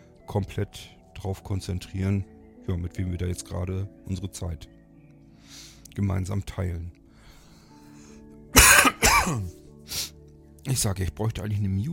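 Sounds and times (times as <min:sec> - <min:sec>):
speech: 0:00.3 - 0:04.8, 0:05.5 - 0:07.0, 0:09.2 - 0:11.9
person coughing: 0:08.6 - 0:09.5.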